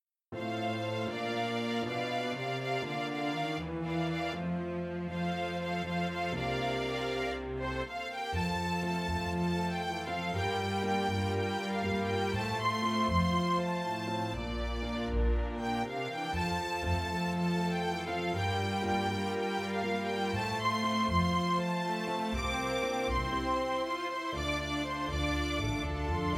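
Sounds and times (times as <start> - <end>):
string orchestra or quintet: 0.4 - 26.3.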